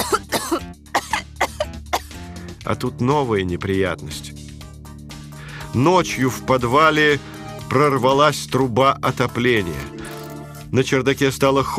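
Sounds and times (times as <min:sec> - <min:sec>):
harsh coughing: 0:00.0 - 0:02.2
speech: 0:02.7 - 0:04.4, 0:05.8 - 0:10.0, 0:10.7 - 0:11.7.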